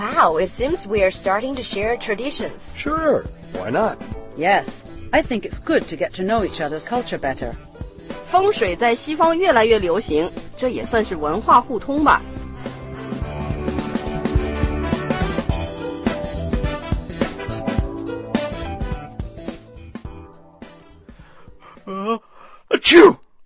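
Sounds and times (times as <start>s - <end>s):
busy music: 0.0s - 22.0s
speech: 0.2s - 7.7s, 8.3s - 12.4s
person sneezing after a breathy intake: 21.7s - 23.2s.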